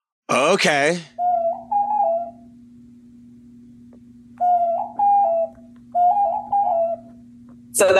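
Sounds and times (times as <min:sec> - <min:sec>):
speech: 0:00.3 - 0:01.1, 0:07.8 - 0:07.9
low hum: 0:00.3 - 0:07.9
male pigeon cooing: 0:01.1 - 0:02.5, 0:04.4 - 0:07.2.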